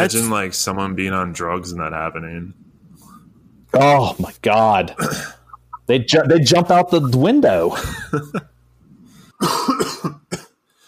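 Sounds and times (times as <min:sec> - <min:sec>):
speech: 0:00.0 - 0:02.6, 0:03.7 - 0:08.5, 0:09.4 - 0:09.6
person coughing harshly after inhaling rice stuck in the throat: 0:05.0 - 0:05.4, 0:09.4 - 0:10.6.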